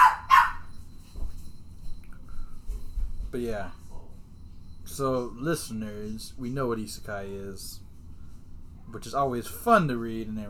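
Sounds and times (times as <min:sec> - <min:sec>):
people imitating dog barks: 0:00.0 - 0:00.6
speech: 0:03.3 - 0:03.8, 0:04.9 - 0:07.8, 0:08.9 - 0:10.4.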